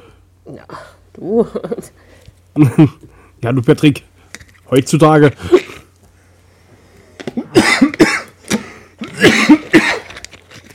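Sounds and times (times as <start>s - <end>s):
speech: 0.4s - 4.1s, 4.7s - 5.6s
person coughing harshly: 7.3s - 10.2s.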